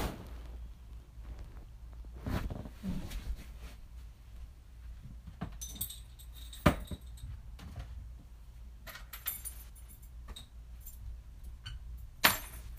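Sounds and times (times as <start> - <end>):
soft fabric rustles from clothes being folded: 0.0 - 4.2
low steady hum: 0.0 - 12.7.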